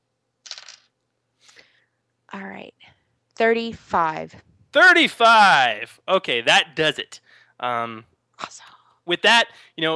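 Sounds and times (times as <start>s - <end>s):
dice rolling: 0.4s - 1.0s
speech: 2.3s - 2.8s, 3.4s - 9.9s.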